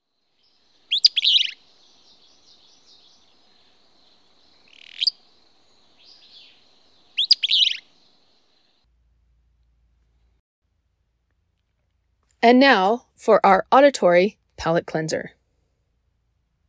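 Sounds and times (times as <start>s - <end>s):
desert southwest subspecies of willow flycatcher singing: 0.2s - 8.8s
willow flycatcher rising call notes: 0.8s - 8.5s
speech: 12.4s - 15.4s.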